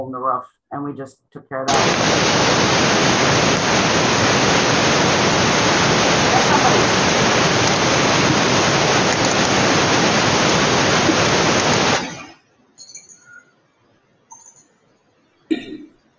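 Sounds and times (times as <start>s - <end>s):
speech: 0.0s - 3.6s
rushing pouring water: 1.7s - 12.3s
cough-like burst: 15.5s - 15.9s.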